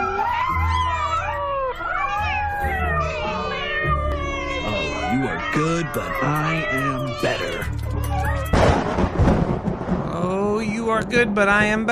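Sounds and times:
cats meowing in overlapping yowls: 0.0 - 9.0
speech: 5.1 - 8.6, 10.2 - 11.8.

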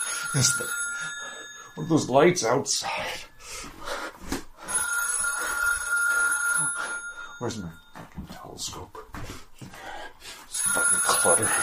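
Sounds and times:
telephone ringing with an electronic tone: 0.0 - 2.5, 4.6 - 8.1, 10.5 - 11.6
speech: 0.3 - 1.2, 1.8 - 3.7, 7.4 - 9.4, 10.8 - 11.6.

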